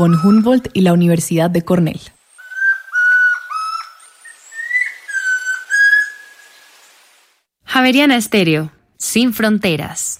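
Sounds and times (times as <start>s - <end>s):
chestnut-crowned antpitta whistled song: 0.0s - 0.8s, 2.4s - 6.7s
speech: 0.0s - 2.2s, 7.8s - 10.1s.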